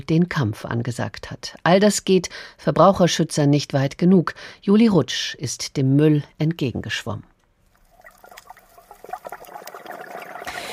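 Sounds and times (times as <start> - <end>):
speech: 0.0 - 7.3
underwater crackles and clicks during a scuba dive: 7.7 - 10.7
fizzing underwater rush during a scuba dive: 7.8 - 10.7
underwater bubbly gurgles during a scuba dive: 7.8 - 10.7.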